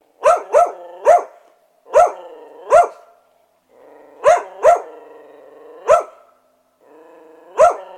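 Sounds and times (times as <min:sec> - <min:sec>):
dog barking: 0:00.2 - 0:03.1, 0:04.2 - 0:04.9, 0:05.8 - 0:06.3, 0:07.6 - 0:07.9.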